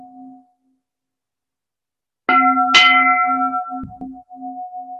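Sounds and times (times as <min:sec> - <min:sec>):
bell struck to mark a moment of silence: 0:02.3 - 0:04.8.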